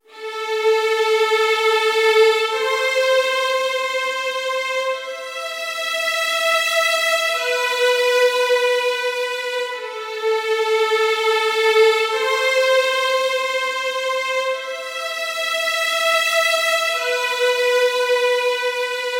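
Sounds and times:
violins playing in D minor: 0:00.1 - 0:19.1.

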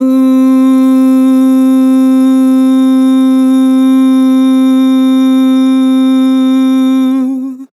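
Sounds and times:
vocal ooh with vibrato: 0:00.0 - 0:07.7.

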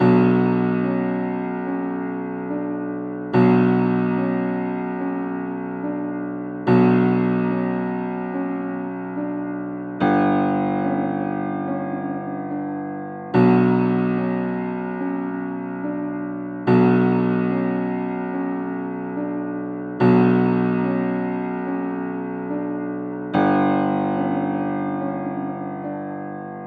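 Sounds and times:
144 BPM B minor drill piano melody loop: 0:00.0 - 0:26.6.

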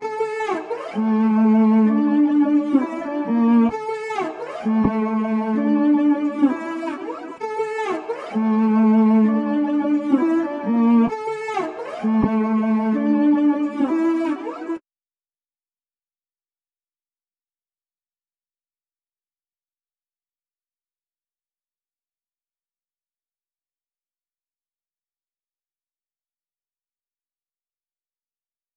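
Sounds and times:
130 BPM A minor string melody loop: 0:00.0 - 0:14.8.

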